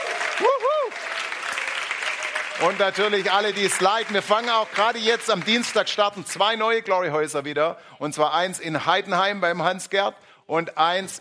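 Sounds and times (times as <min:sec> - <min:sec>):
audience applause at a church service: 0:00.0 - 0:06.2
person whooping: 0:00.1 - 0:01.1
speech: 0:02.6 - 0:11.1.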